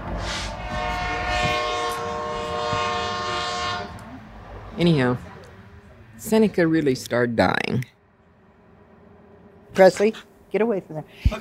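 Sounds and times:
train horn blaring: 0.0 - 5.2
passing train wheels rumbling and clattering: 0.0 - 10.9
speech: 4.8 - 5.3, 6.2 - 8.0, 9.8 - 11.3.

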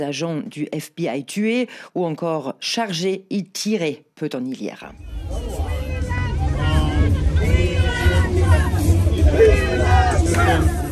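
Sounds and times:
speech: 0.0 - 5.6, 9.3 - 10.8
crowd of about a hundred political supporters chattering outside a residence: 4.9 - 10.9.

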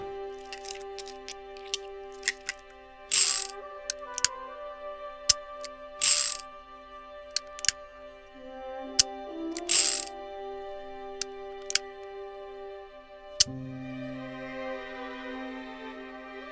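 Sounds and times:
revolver cylinder spinning with short whirring bursts: 0.0 - 4.4, 5.0 - 6.6, 7.3 - 8.4, 9.0 - 13.5
revolver cylinder holding a single bullet ratcheting and clicking: 0.0 - 13.9
low mechanical hum: 0.0 - 16.5.

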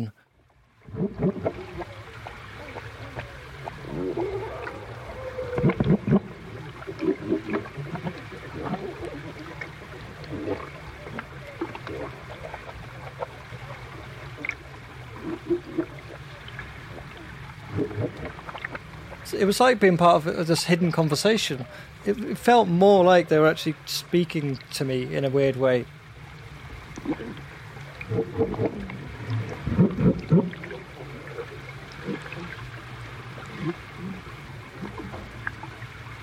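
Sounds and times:
constant murky wash of underwater water noise: 0.0 - 36.2
speech: 0.9 - 1.9, 19.4 - 26.0, 28.1 - 28.8
underwater seal vocalizations via hydrophone: 0.9 - 19.2, 26.9 - 36.0.

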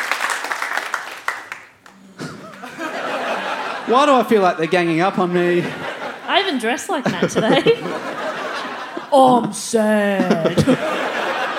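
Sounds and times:
audience round of applause: 0.0 - 3.9
laughter: 2.1 - 11.5
speech: 3.9 - 5.8, 6.5 - 8.2, 9.1 - 11.1.

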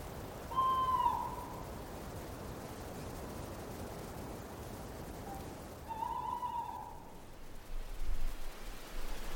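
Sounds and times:
hiss of wind or light rain: 0.0 - 9.3
tawny owls hooting: 0.5 - 1.7, 5.3 - 7.2.

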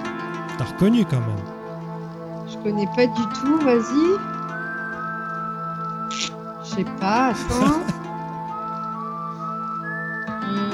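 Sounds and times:
steady sustained musical backing: 0.0 - 10.7
speech: 0.6 - 1.6, 2.5 - 4.4, 6.1 - 8.0
laughter: 7.4 - 8.0
man whistling a tune in long smooth held notes: 8.1 - 10.7.

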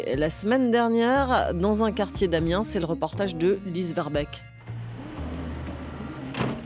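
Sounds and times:
speech: 0.0 - 4.5
low steady vehicle hum: 4.6 - 6.4
sliding door of a bright yellow van rolling open in Amiens: 4.6 - 6.6.

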